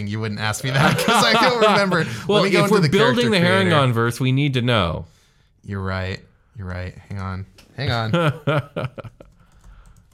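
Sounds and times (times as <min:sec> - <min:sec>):
speech: 0:00.0 - 0:09.2
laughter: 0:00.6 - 0:03.8, 0:07.9 - 0:09.3
typing on a computer keyboard: 0:09.2 - 0:10.1.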